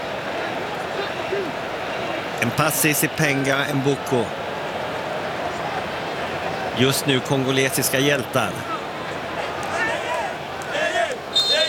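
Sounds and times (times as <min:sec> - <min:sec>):
dense stadium crowd of football fans roaring: 0:00.0 - 0:11.6
speech: 0:02.4 - 0:04.4, 0:06.8 - 0:08.7
football fans whistled singing: 0:11.3 - 0:11.6.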